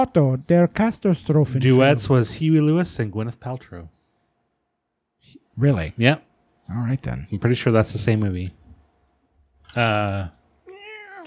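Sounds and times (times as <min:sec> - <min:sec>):
speech: 0:00.0 - 0:04.0, 0:05.2 - 0:08.6, 0:09.7 - 0:10.4
cat meowing: 0:09.8 - 0:11.2.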